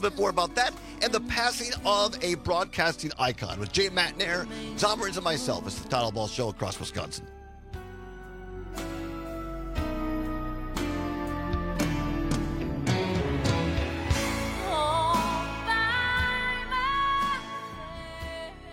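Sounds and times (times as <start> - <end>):
speech: 0.0 - 7.4
radio program theme song with pounding beat and full band backing: 6.8 - 17.8.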